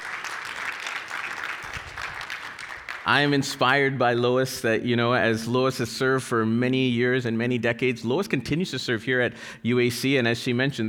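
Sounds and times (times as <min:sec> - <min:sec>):
indoor audience applauding: 0:00.0 - 0:03.4
speech: 0:03.0 - 0:10.8.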